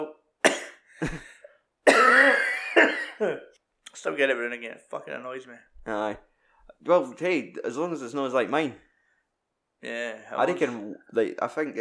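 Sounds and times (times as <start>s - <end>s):
man in his thirties with a lingering virus coughing: 0.4s - 3.5s
speech: 1.0s - 1.3s, 4.0s - 8.9s, 9.8s - 11.7s.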